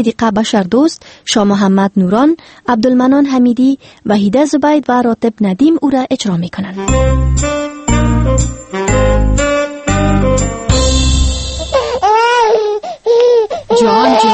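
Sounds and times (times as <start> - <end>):
speech: 0.0 - 7.6, 8.4 - 9.1, 13.8 - 14.3
rhythmic repeating musical bursts: 6.8 - 12.0
baby wailing in loud wavering cries: 11.6 - 14.3.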